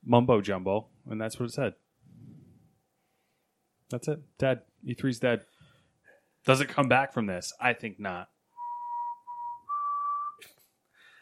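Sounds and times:
speech: 0.1 - 1.9, 3.9 - 5.5, 6.4 - 8.3
person whistling a bugle call: 8.6 - 10.5.

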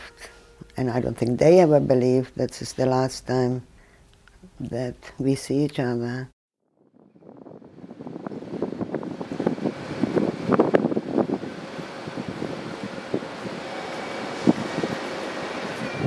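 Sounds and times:
speech: 0.8 - 3.7, 4.6 - 6.4
steady low rumble and wind-like roar in a railway station: 6.8 - 13.6
train passing through a railway station: 7.8 - 16.0.

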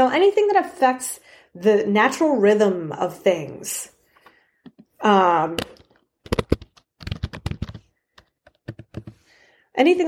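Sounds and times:
speech: 0.0 - 3.9, 5.0 - 5.8, 9.8 - 10.0
keystrokes clattering on a computer keyboard: 6.3 - 9.2.

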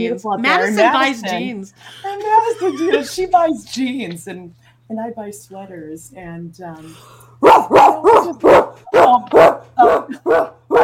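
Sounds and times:
speech: 0.0 - 10.8
dog barking: 7.4 - 10.8.

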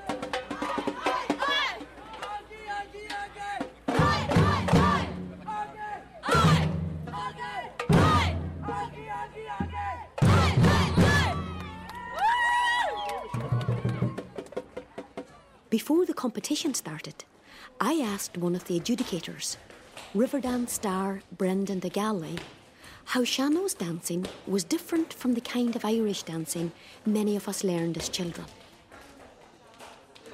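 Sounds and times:
crowd shouting and cheering: 0.0 - 15.6
heavy drums booming: 3.5 - 5.6, 6.2 - 12.1, 13.3 - 15.2
speech: 15.8 - 28.6.

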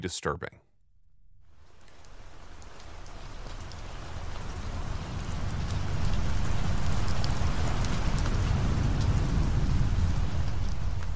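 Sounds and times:
speech: 0.0 - 0.6
heavy rain from a major storm front on the US East Coast: 1.5 - 11.1
deep low rumble of thunder: 3.3 - 11.1.

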